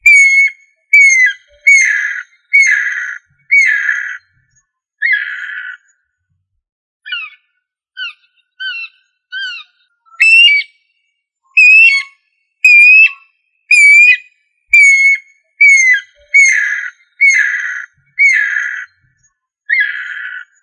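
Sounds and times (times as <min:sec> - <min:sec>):
bird song in whistled phrases with harsh buzzy notes: 0:00.0 - 0:06.0, 0:08.0 - 0:20.6.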